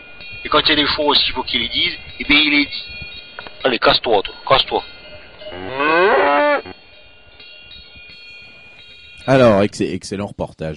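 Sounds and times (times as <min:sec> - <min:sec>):
faint noise: 0:00.0 - 0:10.7
speech: 0:00.4 - 0:03.0, 0:03.6 - 0:04.9, 0:09.3 - 0:10.7
loud drawn-out cow moo: 0:05.4 - 0:06.8.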